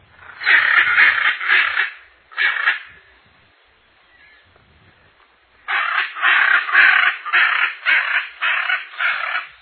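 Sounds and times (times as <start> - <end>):
hyacinth macaw calling: 0.2 - 3.0, 5.6 - 9.5.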